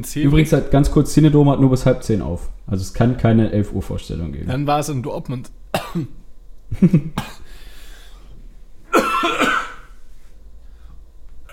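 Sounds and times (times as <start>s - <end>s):
speech: 0.0s - 7.4s
harsh coughing fit: 5.8s - 6.2s, 7.2s - 7.5s, 8.9s - 10.0s.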